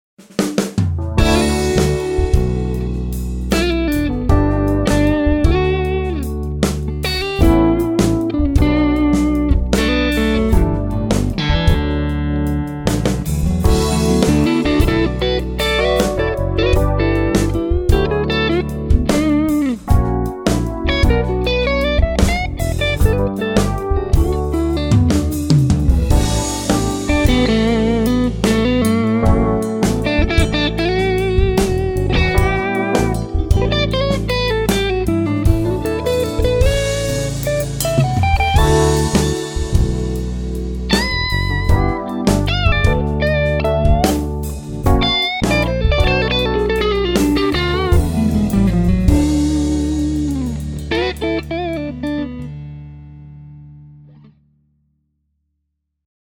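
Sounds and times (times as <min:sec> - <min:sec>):
clear blues music: 0:00.2 - 0:54.4.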